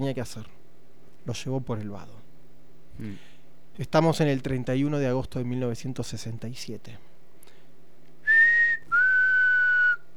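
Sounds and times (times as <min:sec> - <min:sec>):
speech: 0:00.0 - 0:00.6, 0:01.2 - 0:02.2, 0:03.0 - 0:07.1
human whistles used as signals near a river ford: 0:08.3 - 0:10.1.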